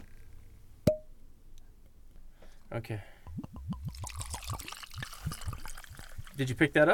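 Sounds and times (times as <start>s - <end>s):
speech: 2.7s - 3.6s, 6.4s - 6.9s
Irish whiskey glugging out of a bottle into a glass: 3.3s - 6.6s.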